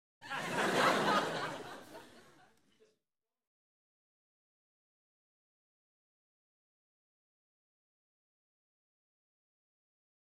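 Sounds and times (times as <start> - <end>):
light entertainment audience laughing: 0.2 - 2.6.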